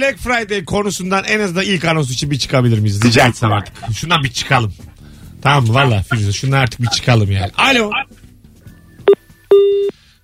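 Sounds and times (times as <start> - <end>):
speech: 0.0 - 8.2
short beep: 9.0 - 10.2
steady electronic tone of a telephone line as a call comes in: 9.1 - 10.2.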